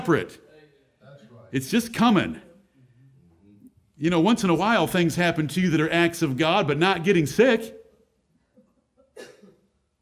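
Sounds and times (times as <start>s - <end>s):
speech: 0.0s - 0.4s, 1.5s - 2.5s, 4.0s - 7.8s
person coughing: 9.0s - 9.8s.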